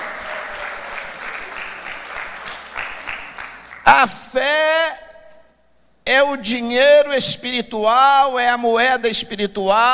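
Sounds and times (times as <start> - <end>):
audience applause: 0.0 - 3.8
speech: 4.0 - 4.9, 6.2 - 9.9.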